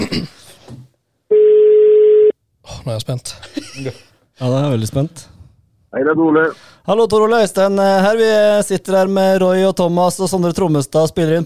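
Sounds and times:
speech: 0:00.1 - 0:00.8, 0:02.8 - 0:11.4
electronic telephone ringing tone of an outgoing call: 0:01.3 - 0:02.3.

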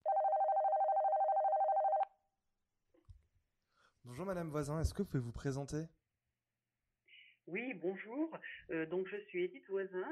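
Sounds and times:
telephone ringing with warbling electronic tone: 0:00.0 - 0:02.1
speech: 0:04.0 - 0:06.0, 0:07.8 - 0:10.0.

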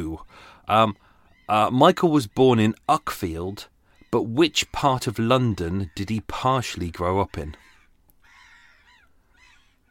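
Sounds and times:
speech: 0:00.0 - 0:07.7
seagulls squawking: 0:00.4 - 0:09.8.

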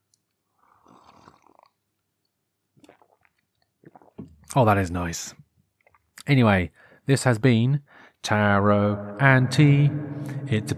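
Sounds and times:
slurp of a hot drink: 0:00.6 - 0:01.8, 0:02.8 - 0:04.3
wet mouth sounds: 0:00.6 - 0:01.8, 0:02.8 - 0:04.6
speech: 0:04.5 - 0:05.4, 0:06.3 - 0:10.7
breaths: 0:06.7 - 0:07.1, 0:07.8 - 0:08.2.

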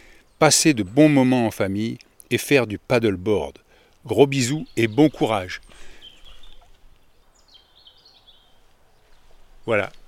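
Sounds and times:
speech: 0:00.4 - 0:05.9, 0:09.6 - 0:10.0
bird calling outdoors with warbling high-pitched phrases: 0:04.3 - 0:10.0.

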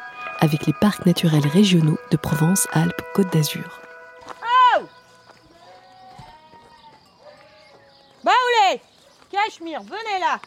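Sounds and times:
speech: 0:00.4 - 0:03.8, 0:09.6 - 0:10.4
farmyard noise: 0:01.4 - 0:10.4
flock of sheep bleating: 0:05.4 - 0:08.1.

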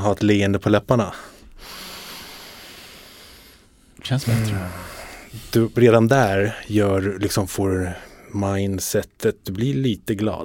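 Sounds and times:
speech: 0:00.0 - 0:01.8, 0:04.0 - 0:10.4
long steady inhale through the nose: 0:01.2 - 0:05.5.

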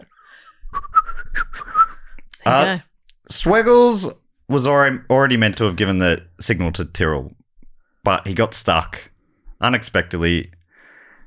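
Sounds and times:
person whistling by sucking air inward: 0:00.5 - 0:02.1
speech: 0:02.4 - 0:07.4, 0:08.0 - 0:10.6.

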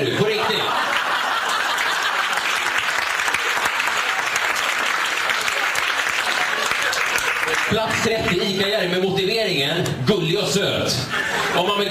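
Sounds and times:
laughter: 0:00.0 - 0:02.8, 0:05.4 - 0:07.9, 0:11.1 - 0:11.8
audience applause: 0:00.5 - 0:08.6
speech: 0:07.7 - 0:11.8.

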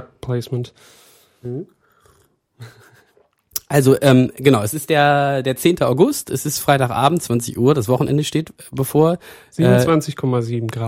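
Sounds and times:
speech: 0:00.0 - 0:01.8, 0:02.6 - 0:02.9, 0:03.7 - 0:10.8
person slurping hot Bad Heilbronner cold-relief tea: 0:02.0 - 0:02.4.

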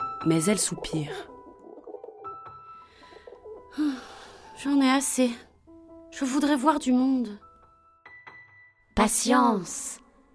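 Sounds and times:
speech: 0:00.2 - 0:01.3, 0:03.8 - 0:05.5, 0:06.2 - 0:07.4, 0:09.0 - 0:10.0
doves cooing: 0:01.1 - 0:04.4.

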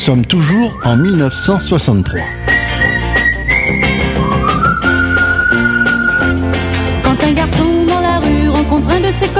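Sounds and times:
speech: 0:00.0 - 0:02.4
lively band backing: 0:00.0 - 0:09.3
bright steady whistled tune: 0:00.3 - 0:07.0
regular drum beat: 0:02.0 - 0:07.8.

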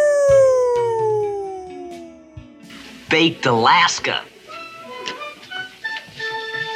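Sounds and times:
wolf howling: 0:00.0 - 0:02.6
speech: 0:03.1 - 0:04.3.

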